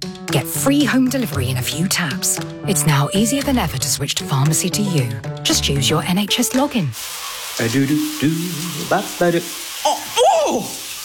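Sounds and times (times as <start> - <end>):
speech: 0.3 - 10.8
cold shower water spraying: 6.4 - 11.0
person yelping and gasping under a cold shower: 9.8 - 10.8.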